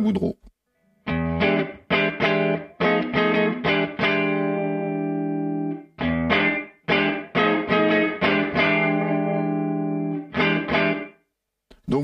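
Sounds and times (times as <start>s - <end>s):
speech: 0.0s - 0.5s
overdriven electric guitar on neck pickup through amp emulator playing chord stabs: 1.0s - 11.2s.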